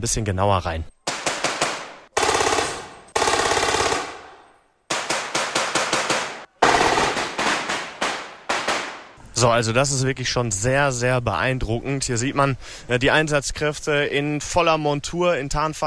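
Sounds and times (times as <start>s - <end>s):
speech: 0.0s - 0.9s, 9.4s - 15.8s
gunfire bursts during a dynamic urban house-to-house combat demonstration: 1.1s - 4.3s, 4.9s - 9.0s.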